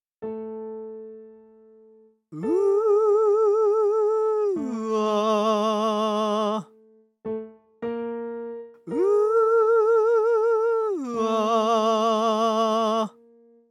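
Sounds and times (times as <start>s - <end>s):
person singing in a practice mix: 2.4s - 6.7s, 8.9s - 13.2s.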